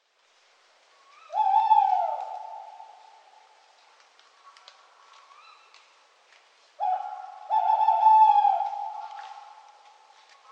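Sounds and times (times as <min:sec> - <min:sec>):
tawny owl calling: 0:01.1 - 0:03.2, 0:06.8 - 0:09.6.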